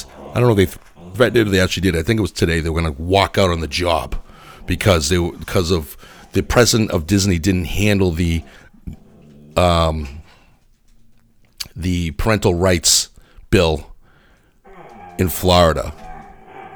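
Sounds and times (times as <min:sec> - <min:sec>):
dog woofing while playing with another dog: 0:00.0 - 0:11.2, 0:14.6 - 0:16.7
speech: 0:00.4 - 0:09.0, 0:09.6 - 0:10.2, 0:11.7 - 0:13.9, 0:15.2 - 0:16.0.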